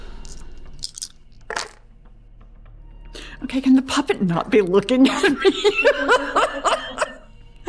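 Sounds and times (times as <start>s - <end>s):
dice being rerolled clattering across a tabletop: 0.2s - 1.8s
speech: 3.5s - 7.0s
laughter: 5.0s - 7.2s.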